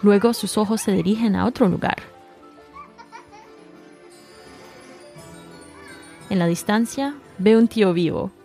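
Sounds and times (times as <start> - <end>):
speech: 0.0 - 2.2, 6.3 - 8.4
children playing by the sea squealing and giggling: 2.6 - 3.6, 5.3 - 6.3.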